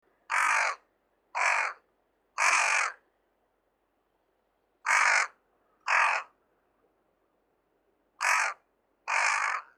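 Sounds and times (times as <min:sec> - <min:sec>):
large-billed crow calling: 0:00.3 - 0:00.8, 0:01.4 - 0:01.8, 0:02.4 - 0:03.0, 0:04.8 - 0:06.4, 0:08.2 - 0:09.7.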